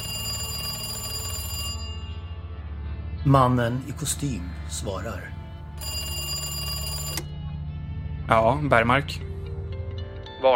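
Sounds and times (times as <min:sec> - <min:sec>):
telephone ringing in an office: 0:00.0 - 0:02.4, 0:05.8 - 0:07.4
speech: 0:03.2 - 0:05.4, 0:08.3 - 0:09.3.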